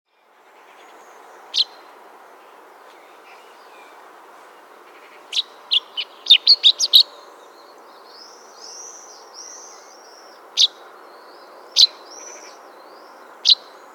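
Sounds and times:
Fringilla coelebs common chaffinch calls with sharp high chirps: 0:00.7 - 0:01.9, 0:04.9 - 0:13.9.

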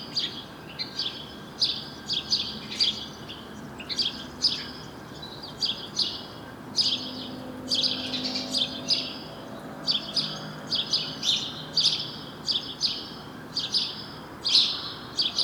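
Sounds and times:
Passer domesticus chirping: 0:00.1 - 0:15.4.

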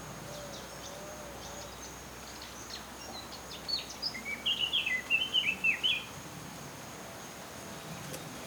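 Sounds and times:
Eurasian blackcap Sylvia atricapilla song: 0:00.0 - 0:06.1
faint background hiss: 0:00.0 - 0:08.4.

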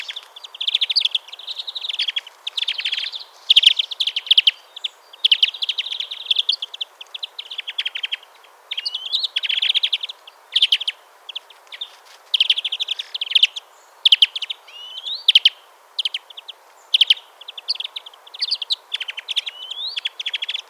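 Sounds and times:
European greenfinch Chloris chloris chattering and twittering: 0:00.0 - 0:20.6.

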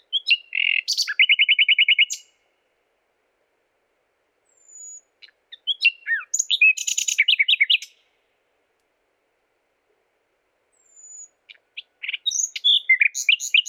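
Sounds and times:
common nightingale Luscinia megarhynchos singing: 0:00.0 - 0:02.4, 0:04.4 - 0:08.1, 0:10.7 - 0:13.6.

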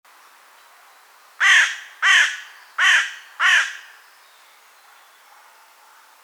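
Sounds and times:
carrion crow cawing, Corvus corone: 0:01.4 - 0:04.0.

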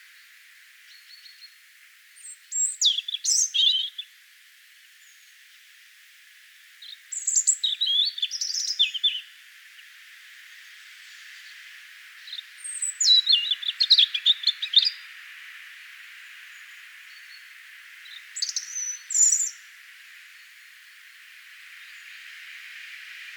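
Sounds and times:
European robin Erithacus rubecula singing: 0:02.2 - 0:04.1, 0:06.8 - 0:09.4, 0:12.2 - 0:15.1, 0:16.5 - 0:19.7.

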